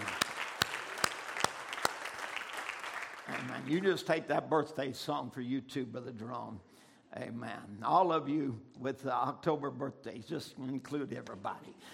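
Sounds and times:
audience applause: 0.0 - 3.9
sharp claps: 0.0 - 4.0
speech: 3.4 - 11.9.

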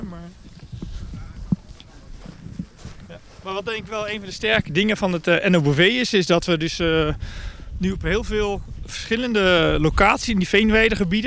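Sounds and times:
footsteps crunching along outdoors: 0.3 - 5.8
speech: 3.4 - 11.2.

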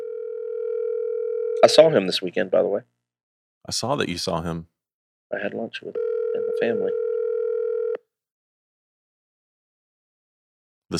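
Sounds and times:
electronic ringback tone from an outgoing phone call: 0.0 - 1.8, 6.0 - 8.0
speech: 1.6 - 3.0, 3.6 - 4.7, 5.3 - 7.0.

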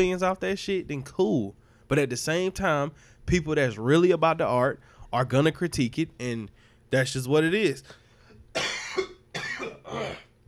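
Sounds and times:
speech: 0.0 - 8.0, 9.9 - 10.2
person coughing and choking on something caught in the throat: 8.5 - 10.4.

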